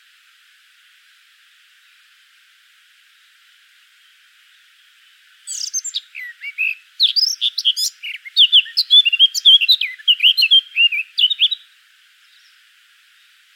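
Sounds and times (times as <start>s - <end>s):
Sylvia atricapilla warbling song: 5.4s - 12.6s.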